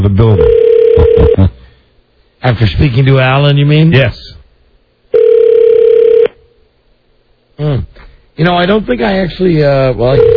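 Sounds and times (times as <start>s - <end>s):
speech: 0.1s - 0.6s, 2.4s - 4.4s, 7.6s - 10.3s
telephone ringing: 0.4s - 1.4s, 5.1s - 6.3s, 10.1s - 10.3s.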